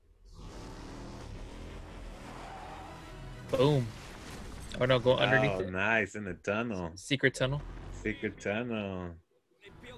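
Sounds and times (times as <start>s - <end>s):
car engine roaring as the car accelerates to jump a border wall: 0.6s - 3.8s
speech: 3.5s - 4.0s, 4.8s - 9.8s.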